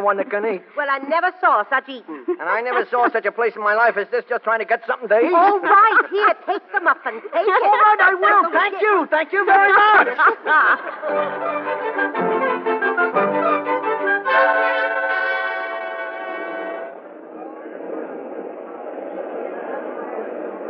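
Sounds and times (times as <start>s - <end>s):
speech: 0.0s - 12.6s
laughter: 2.1s - 3.4s, 5.2s - 11.7s
subway train rumbling in motion: 11.0s - 20.6s.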